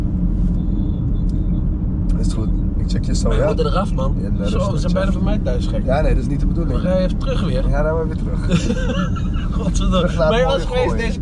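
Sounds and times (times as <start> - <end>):
engine rumble inside a moving car: 0.0 - 11.2
faint road noise: 0.0 - 11.2
thin high whine in a moving car: 0.0 - 11.2
speech: 3.0 - 11.2
laughter: 3.2 - 3.9, 6.6 - 11.2.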